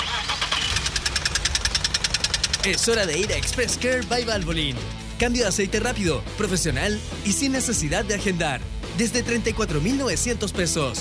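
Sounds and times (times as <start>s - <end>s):
car engine cranking without catching: 0.0s - 5.0s
speech: 2.6s - 10.9s.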